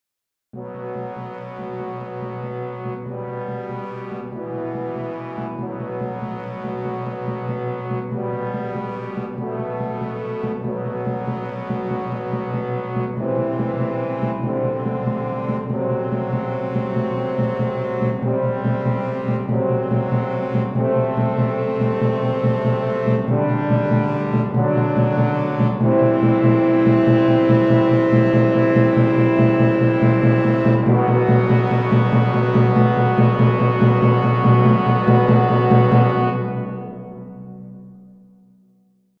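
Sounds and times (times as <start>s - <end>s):
timpani beat: 0.6s - 38.3s.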